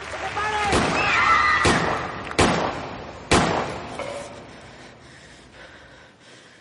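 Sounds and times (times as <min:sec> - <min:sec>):
gunshots fired into the ceiling: 0:00.6 - 0:04.0.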